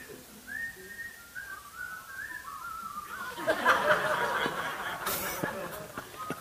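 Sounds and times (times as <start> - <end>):
people whistling a wavering melody: 0.4 - 4.2
crowd murmuring: 3.0 - 6.3
people chuckling: 3.1 - 6.3.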